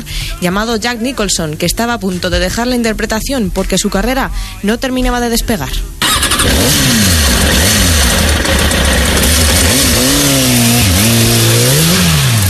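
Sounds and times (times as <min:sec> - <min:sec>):
speech: 0:00.4 - 0:07.1
motorcycle engines starting and revving: 0:06.0 - 0:12.4.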